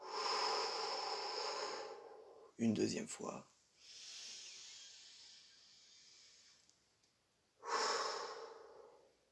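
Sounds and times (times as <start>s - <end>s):
deep inhale and full exhale: 0.0s - 2.5s, 3.8s - 6.6s, 7.6s - 9.2s
speech: 2.6s - 3.5s.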